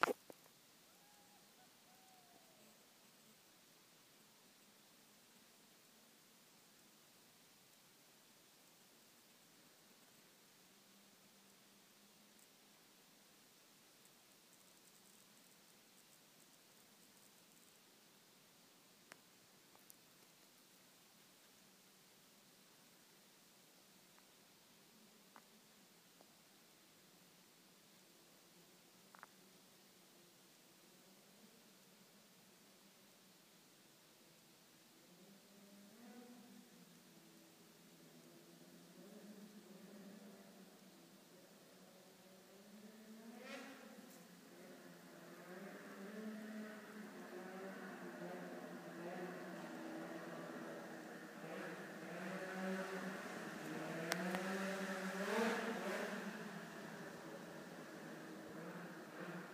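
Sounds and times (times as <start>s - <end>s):
snowmobiles: 38.0s - 59.5s.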